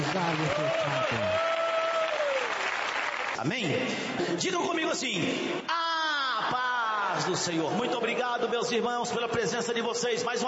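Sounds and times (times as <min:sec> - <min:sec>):
audience clapping hands in applause: 0:00.0 - 0:04.2
speech: 0:00.2 - 0:01.5, 0:03.4 - 0:05.8, 0:06.4 - 0:10.4.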